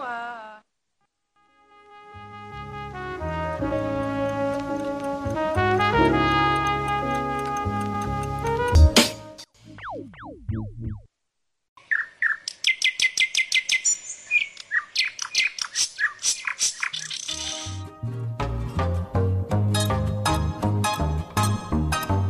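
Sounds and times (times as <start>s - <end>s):
music: 1.4s - 9.5s, 17.3s - 22.2s
mockingbird song: 11.8s - 17.8s.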